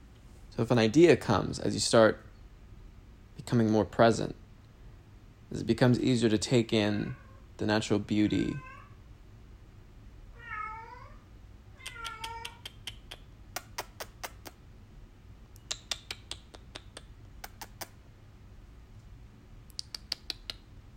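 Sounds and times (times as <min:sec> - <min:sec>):
low steady hum: 0:00.0 - 0:20.9
speech: 0:00.6 - 0:02.3, 0:03.4 - 0:04.4, 0:05.5 - 0:08.7
cat meowing: 0:06.9 - 0:07.4, 0:08.3 - 0:09.0, 0:10.3 - 0:11.2, 0:11.8 - 0:12.8.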